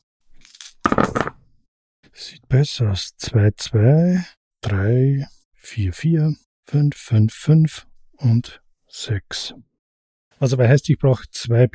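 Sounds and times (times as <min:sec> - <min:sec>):
dice being shaken: 0:00.4 - 0:01.4
speech: 0:02.5 - 0:09.7, 0:10.4 - 0:11.7.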